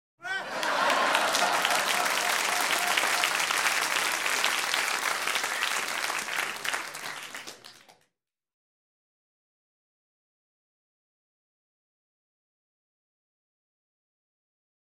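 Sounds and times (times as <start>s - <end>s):
light entertainment audience laughing: 0.2s - 4.1s
light entertainment audience applause: 0.2s - 8.0s.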